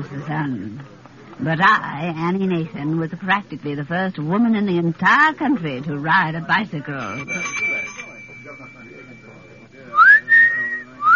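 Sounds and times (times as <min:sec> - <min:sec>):
speech: 0:00.0 - 0:07.7
low murmur: 0:00.0 - 0:11.1
faint steady tone: 0:06.9 - 0:11.1
man whistling a wolf whistle: 0:09.9 - 0:11.1.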